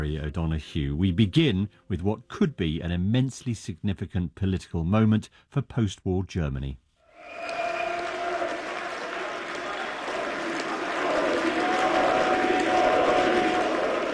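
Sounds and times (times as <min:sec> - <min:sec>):
speech: 0:00.0 - 0:07.6
crowd of far-right supporters cheering and applauding an election victory in Saxony-Anhalt: 0:07.2 - 0:14.1.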